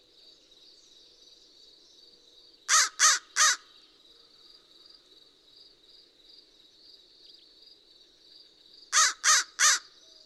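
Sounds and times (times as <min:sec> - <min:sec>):
American crow giving loud grating caws: 0:02.7 - 0:03.7, 0:09.0 - 0:10.0.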